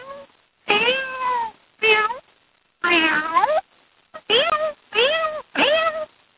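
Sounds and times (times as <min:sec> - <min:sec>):
human voice imitating cat meows: 0:00.0 - 0:02.2, 0:02.8 - 0:03.6, 0:04.2 - 0:06.1.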